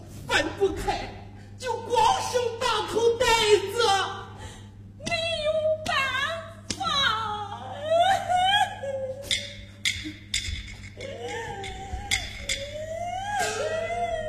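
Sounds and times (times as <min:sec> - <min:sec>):
steady low hum: 0:00.0 - 0:14.2
stylized wailing sobs from a traditional Beijing opera or folk storytelling performer: 0:06.8 - 0:09.4, 0:11.0 - 0:14.2.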